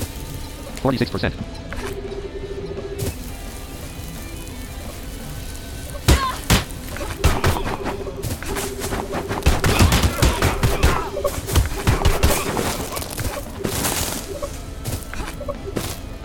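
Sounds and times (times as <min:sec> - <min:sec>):
steady video game noise: 0:00.0 - 0:16.2
speech: 0:00.8 - 0:01.9
Springfield Armory 1911 pistol gunfire in a video game: 0:09.4 - 0:13.1.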